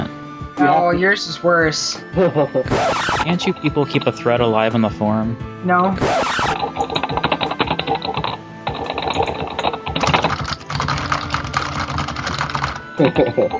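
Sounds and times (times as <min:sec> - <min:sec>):
speech: 0:00.6 - 0:07.2, 0:13.0 - 0:13.5
rapid keyboard typing: 0:06.1 - 0:13.5.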